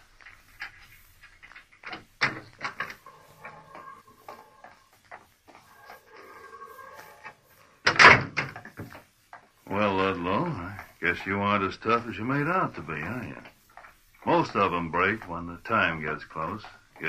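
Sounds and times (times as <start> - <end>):
heavy corridor door creaking open: 1.8 - 4.8, 5.7 - 8.7
speech: 10.0 - 13.5, 14.2 - 17.0.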